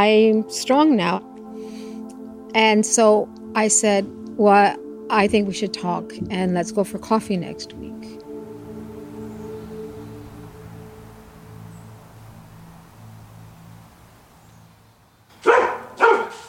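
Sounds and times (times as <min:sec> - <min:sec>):
speech: 0:00.0 - 0:01.3, 0:02.5 - 0:08.2
low steady hum: 0:00.0 - 0:15.3
dog barking: 0:15.4 - 0:16.4.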